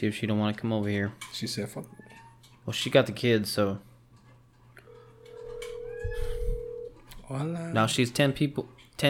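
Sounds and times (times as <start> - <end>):
speech: 0.0 - 3.9, 7.3 - 9.0
phone ringback tone of a call waiting to be answered: 4.8 - 7.0.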